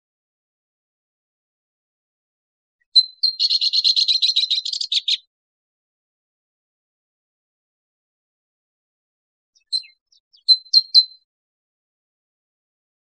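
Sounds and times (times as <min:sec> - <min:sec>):
Abert's towhee calls with sharp notes and buzzy chattering: 0:03.0 - 0:05.2.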